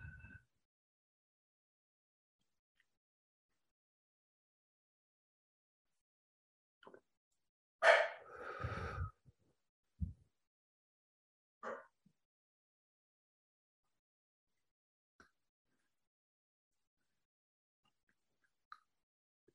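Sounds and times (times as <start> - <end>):
deep breath: 0.0 - 0.5, 8.2 - 9.2
faint brief breath noises: 8.1 - 9.3.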